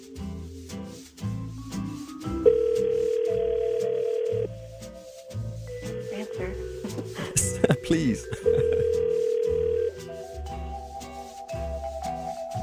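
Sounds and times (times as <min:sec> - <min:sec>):
rhythmic music bed: 0:00.0 - 0:12.6
telephone ringback tone on an outgoing call: 0:02.5 - 0:04.5, 0:08.4 - 0:10.0
laughter: 0:07.2 - 0:09.0
speech: 0:07.9 - 0:08.8.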